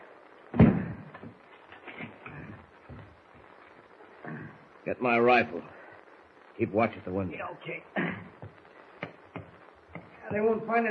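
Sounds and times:
door of a shack in the woods slamming shut: 0:00.6 - 0:01.0
speech: 0:04.9 - 0:05.8, 0:06.6 - 0:08.1, 0:10.3 - 0:10.8.

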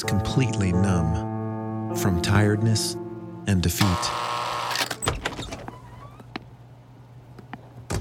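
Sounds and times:
speech: 0:00.0 - 0:01.2, 0:02.0 - 0:04.4
door latch click: 0:04.7 - 0:05.4.

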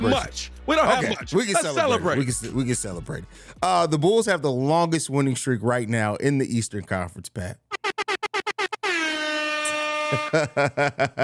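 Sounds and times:
speech: 0:00.0 - 0:07.7, 0:10.1 - 0:11.2
laughter: 0:00.8 - 0:02.5, 0:10.1 - 0:11.2
air horn blasts: 0:08.6 - 0:10.6.

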